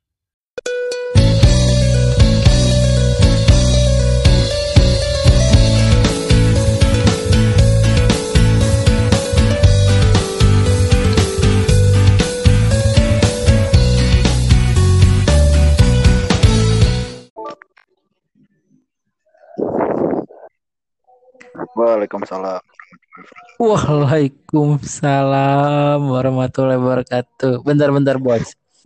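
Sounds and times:
song playing loudly: 0.6 - 17.6
speech: 21.9 - 28.8.

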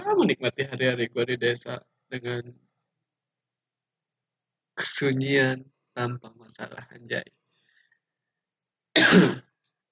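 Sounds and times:
speech: 0.2 - 2.6, 4.8 - 7.4, 9.1 - 9.5
person clearing throat with a coughing edge: 9.0 - 9.4.

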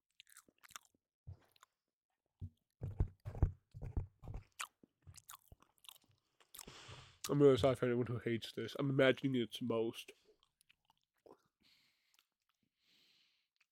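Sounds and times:
person chewing a mint chocolate: 0.0 - 1.8, 4.3 - 6.8, 10.3 - 12.6
speech: 7.3 - 10.2.

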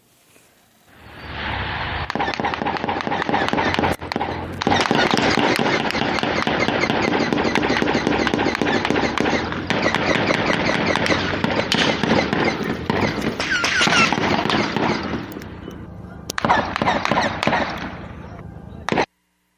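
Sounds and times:
gunfire in rapid bursts from a prolonged shootout: 2.0 - 15.6, 16.3 - 18.1, 18.9 - 19.1.

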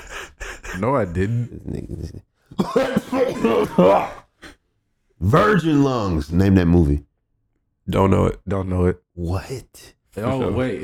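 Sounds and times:
speech: 0.8 - 4.2, 5.2 - 7.1, 7.9 - 10.8
person coughing into the microphone: 2.5 - 4.6.

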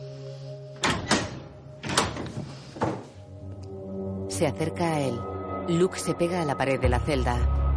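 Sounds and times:
prison cell door being opened with thunks and clunks: 0.8 - 3.2
speech: 4.4 - 7.6.

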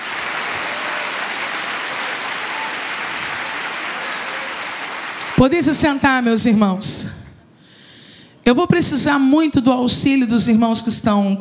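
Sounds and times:
audience applauding: 0.0 - 6.0
speech: 5.4 - 7.2, 8.5 - 11.3.

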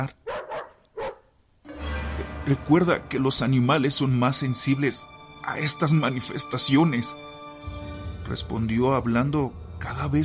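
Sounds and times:
speech: 0.0 - 0.2, 2.5 - 7.3, 8.3 - 10.2
dog barking urgently: 0.2 - 1.3.

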